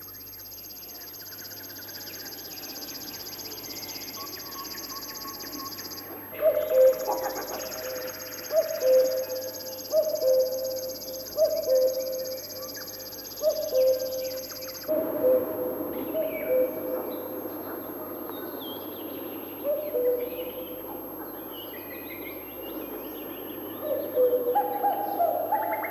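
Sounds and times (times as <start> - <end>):
river warbler dry insect-like trill: 0.0 - 15.6
male common cuckoo two-note call: 4.2 - 16.9, 23.8 - 25.8.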